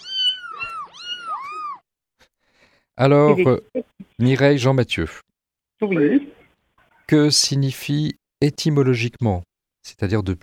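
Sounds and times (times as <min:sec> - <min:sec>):
kittens meowing: 0:00.0 - 0:01.9
speech: 0:03.0 - 0:05.2, 0:05.8 - 0:06.4, 0:07.1 - 0:10.4.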